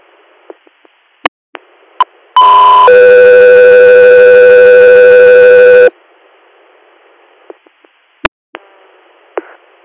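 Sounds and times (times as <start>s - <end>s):
clicks and squelch bursts of radio static: 0.4s - 2.2s, 7.4s - 9.8s
electronic radio dispatch alert tone: 2.4s - 5.9s.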